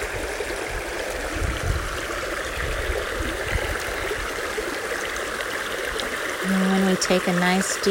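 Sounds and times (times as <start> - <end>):
forest stream flowing: 0.0 - 7.9
speech: 6.5 - 7.9.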